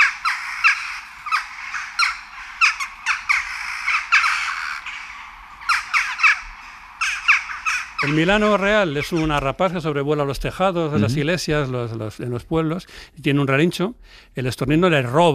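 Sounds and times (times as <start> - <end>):
western jackdaw calls: 0.0 - 9.9
speech: 8.0 - 15.3.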